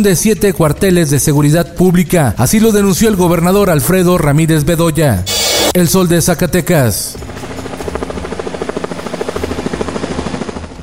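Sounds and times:
speech: 0.0s - 7.5s
helicopter engine whine: 5.2s - 10.8s
helicopter rotor thumping: 7.1s - 10.8s.

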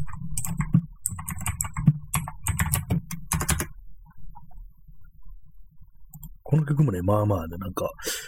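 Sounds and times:
typing on a computer keyboard: 0.0s - 3.8s
quiet noise: 0.0s - 8.2s
speech: 6.5s - 8.1s.

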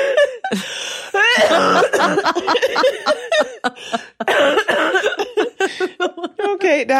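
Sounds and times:
short breathy gasps: 0.0s - 1.2s, 3.8s - 4.3s
laughter: 0.0s - 6.9s
loud coughing fit: 1.2s - 3.6s, 4.2s - 5.6s.

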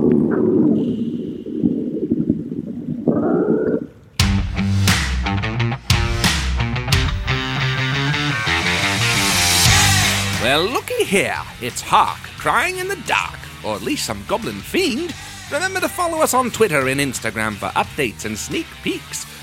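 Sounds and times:
stomach growling echoing in a cavern: 0.0s - 4.2s
loud burst of music: 4.2s - 12.4s
speech: 10.6s - 19.4s.

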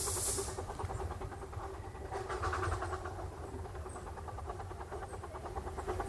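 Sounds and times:
steam train releasing steam: 0.0s - 0.8s
steam train chugging as it pulls away: 0.0s - 6.0s.

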